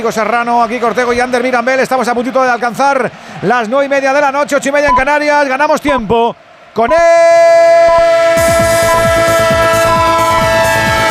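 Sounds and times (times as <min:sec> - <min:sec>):
speech: 0:00.0 - 0:07.4
loud sustained train horn: 0:07.7 - 0:11.1.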